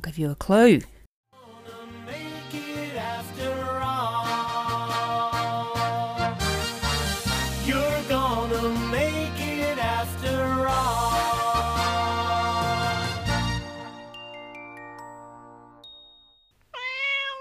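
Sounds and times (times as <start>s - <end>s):
speech: 0.0s - 0.9s
upbeat instrumental music: 1.4s - 16.0s
cat mascot meow of a television studio logo: 16.7s - 17.3s.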